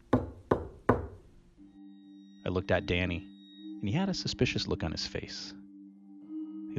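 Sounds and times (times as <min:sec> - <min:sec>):
knocks on wood during a paranormal investigation: 0:00.0 - 0:01.2
speech: 0:02.5 - 0:05.6.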